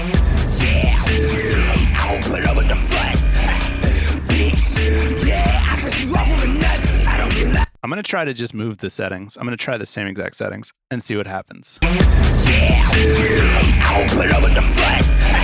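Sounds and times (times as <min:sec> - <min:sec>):
loud heavily distorted music track: 0:00.0 - 0:07.7, 0:11.8 - 0:15.4
speech: 0:07.9 - 0:15.4.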